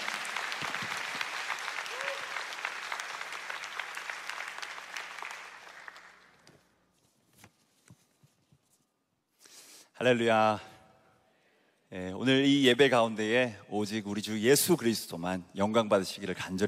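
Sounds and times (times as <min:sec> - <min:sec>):
large congregation applauding warmly: 0:00.0 - 0:06.5
speech: 0:10.0 - 0:10.7, 0:12.0 - 0:16.6.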